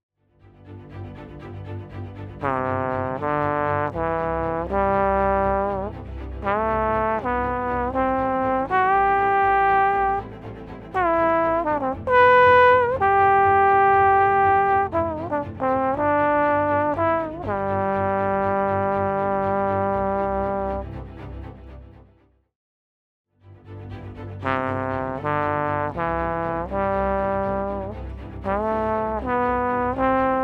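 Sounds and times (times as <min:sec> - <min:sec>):
horn test: 0:02.4 - 0:10.3, 0:11.0 - 0:20.8, 0:24.4 - 0:30.4.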